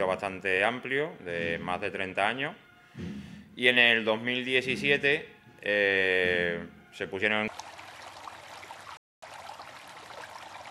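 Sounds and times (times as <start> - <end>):
speech: 0.1 - 7.6
trickling stream of water: 7.4 - 10.7.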